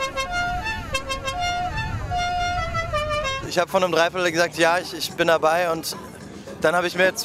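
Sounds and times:
rally car horns honking at the start of a rally: 0.0s - 3.6s
rally car engines idling: 0.0s - 7.2s
busy outdoor crowd at a fish market: 0.9s - 7.2s
speech: 3.6s - 7.2s.

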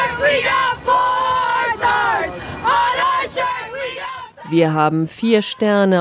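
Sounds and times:
large crowd of fans cheering and chanting at a parade along the Canyon of Heroes: 0.0s - 5.9s
speech: 4.5s - 5.9s.

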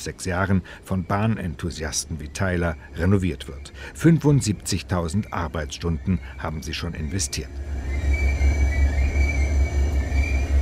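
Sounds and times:
speech: 0.0s - 7.8s
passenger train pulled by 4,300 horsepower SD-Mac locomotive rolling on rails: 3.8s - 10.6s
thin metallic whine from train wheels: 4.8s - 10.6s.

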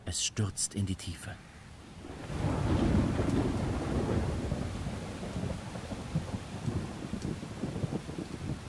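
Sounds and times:
speech: 0.1s - 1.5s
gusty wind rushing and buffeting: 1.8s - 8.6s
low rolling thunder in a storm: 1.9s - 8.6s
heavy raindrops pattering: 2.0s - 8.6s.

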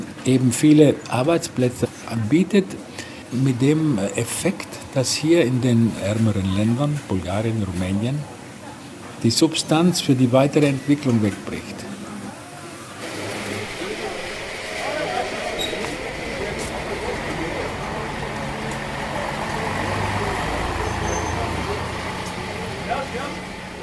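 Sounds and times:
speech: 0.2s - 8.4s, 9.2s - 11.9s
busy mix of voices and chatter: 1.9s - 23.8s
buses idling at a factory gate: 13.0s - 23.8s.

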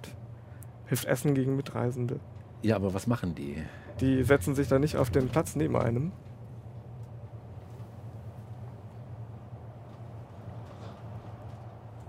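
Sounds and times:
moving train rumble heard from inside along a noise barrier: 0.0s - 12.0s
speech: 0.9s - 6.3s.

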